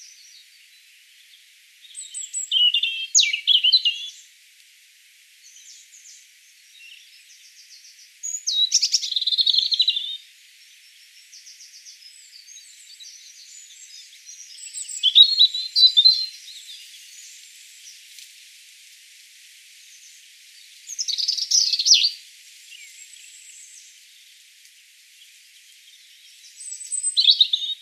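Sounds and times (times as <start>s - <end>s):
European robin Erithacus rubecula song with tinkling high-pitched notes and trills: 0.0s - 4.2s, 5.4s - 18.2s, 19.9s - 24.4s, 25.4s - 27.8s.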